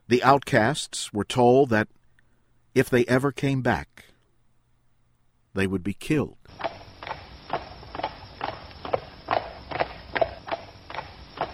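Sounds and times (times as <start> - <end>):
speech: 0.1 - 2.0, 2.8 - 4.1, 5.6 - 6.7
horses' hooves clip-clopping as riders walk slowly out of a town: 6.5 - 11.5.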